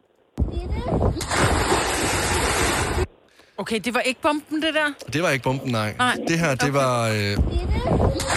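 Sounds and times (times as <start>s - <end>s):
churning water sloshing and hissing: 0.9s - 3.2s, 7.9s - 8.3s
body belly-flopping into water in a splash contest: 1.2s - 3.1s
speech: 3.6s - 8.3s.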